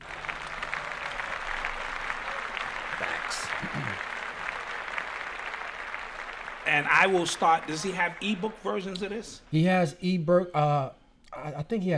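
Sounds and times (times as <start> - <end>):
group applause: 0.0 - 9.6
speech: 6.7 - 11.9.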